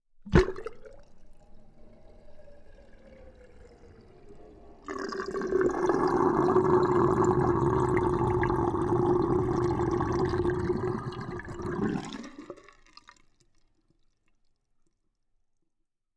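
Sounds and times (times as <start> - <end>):
household sink drain: 4.8 - 12.7.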